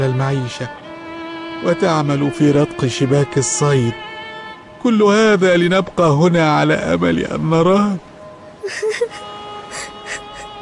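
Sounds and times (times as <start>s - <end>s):
speech: 0.0s - 0.8s, 1.6s - 4.1s, 4.8s - 8.1s, 8.7s - 9.0s
person sobbing and whimpering: 8.6s - 10.6s.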